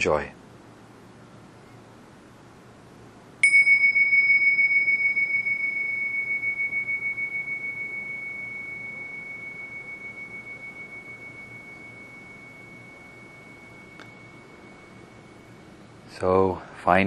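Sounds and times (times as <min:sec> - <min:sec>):
speech: 0:00.0 - 0:00.4, 0:16.2 - 0:17.0
meditation bell struck to begin a guided sitting meditation: 0:03.4 - 0:16.2.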